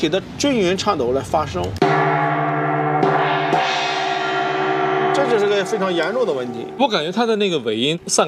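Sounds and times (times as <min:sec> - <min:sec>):
speech: 0:00.0 - 0:02.3, 0:05.2 - 0:08.2
gong struck with mallet: 0:01.8 - 0:07.4.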